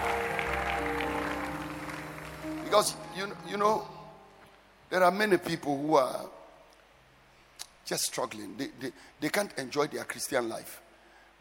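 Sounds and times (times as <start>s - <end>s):
audience clapping and cheering: 0.0s - 3.5s
speech: 2.7s - 4.0s, 4.9s - 6.4s, 7.9s - 10.8s.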